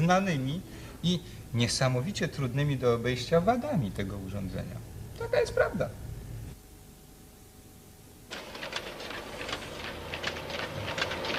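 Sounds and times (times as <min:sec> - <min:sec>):
speech: 0:00.0 - 0:06.0
battery production machine hum: 0:00.0 - 0:11.3
battery production machine stacking lead-acid battery plates and separators: 0:08.3 - 0:11.3.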